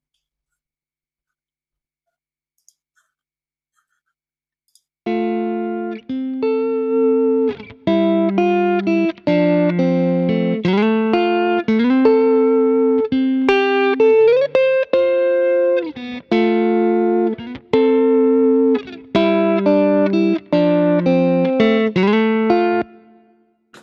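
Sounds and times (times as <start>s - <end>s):
electric guitar heavily compressed on a hard setting playing notes and chords: 5.1s - 23.2s.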